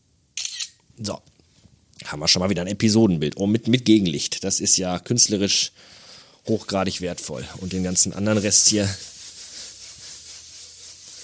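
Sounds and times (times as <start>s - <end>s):
speech: 1.0s - 1.3s, 2.0s - 9.1s
cloth wiped back and forth across a surface with cleaner: 6.5s - 11.2s.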